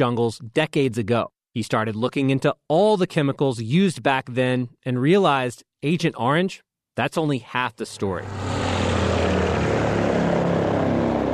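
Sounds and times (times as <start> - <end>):
speech: 0.0 - 8.5
C-123 cargo plane propeller engines droning: 8.2 - 11.3.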